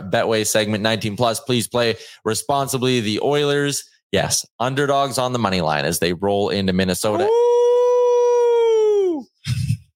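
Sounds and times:
speech: 0:00.1 - 0:07.5
person imitating a howling dog: 0:07.1 - 0:09.3.

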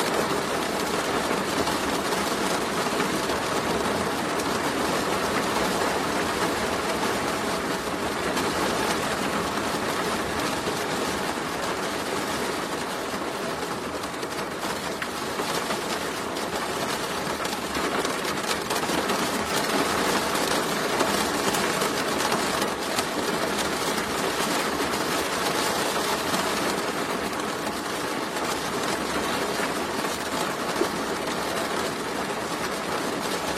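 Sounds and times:
rain drumming on a roof window: 0:00.0 - 0:33.5.

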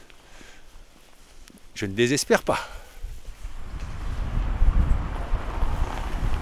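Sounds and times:
speech: 0:01.8 - 0:02.8
light wind gusts buffeting the microphone outdoors beside the Meuse river: 0:03.0 - 0:06.4.

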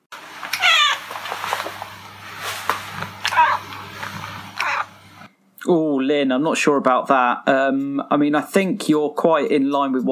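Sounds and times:
cat meowing: 0:00.5 - 0:01.1, 0:03.2 - 0:03.7, 0:04.6 - 0:05.0
speech: 0:05.7 - 0:10.0.

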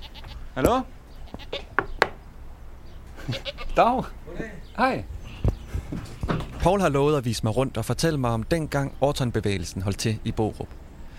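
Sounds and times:
goats bleating: 0:00.0 - 0:00.6, 0:01.2 - 0:01.8, 0:03.2 - 0:04.2
speech: 0:00.6 - 0:01.5, 0:03.8 - 0:05.2, 0:06.6 - 0:10.8.

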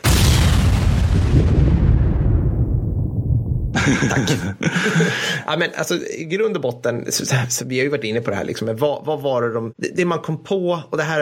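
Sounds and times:
explosion sound effect with deep rumbling boom and high crackle: 0:00.0 - 0:04.4
laughter: 0:03.8 - 0:05.5
speech: 0:03.9 - 0:11.1.

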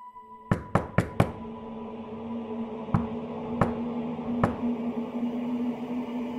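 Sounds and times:
steady low hum: 0:00.1 - 0:06.3
knuckles knocking on a wooden window shutter: 0:00.5 - 0:01.4, 0:03.0 - 0:04.7.

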